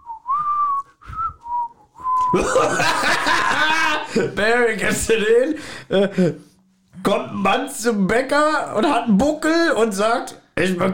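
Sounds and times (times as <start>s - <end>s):
person whistling a short wavering tune: 0.0s - 2.4s
speech: 2.3s - 3.5s, 4.1s - 10.9s
laughter: 2.3s - 4.5s.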